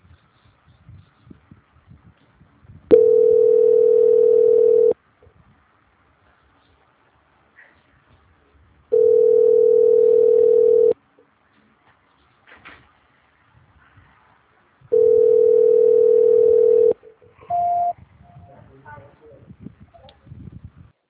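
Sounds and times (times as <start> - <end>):
telephone line tones while a call is being transferred: 2.9 - 5.0, 8.9 - 11.0, 14.9 - 18.0
short higher telephone beep: 17.5 - 18.0.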